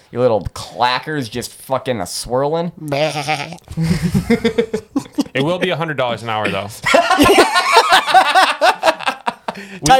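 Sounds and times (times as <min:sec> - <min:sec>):
speech: 0:00.1 - 0:08.9, 0:09.6 - 0:09.9
person imitating a goat with bleating cries: 0:02.9 - 0:03.6
laughter: 0:03.7 - 0:05.8, 0:06.5 - 0:09.9.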